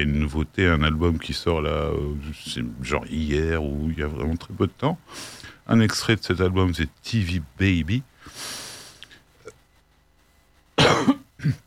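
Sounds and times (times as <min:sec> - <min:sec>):
speech: 0:00.0 - 0:08.6, 0:11.0 - 0:11.6
harsh coughs: 0:10.8 - 0:11.6.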